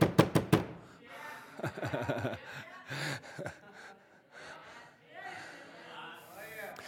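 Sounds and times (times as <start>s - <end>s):
forceful knocking on a door: 0.0s - 0.8s
laughter: 1.2s - 4.2s.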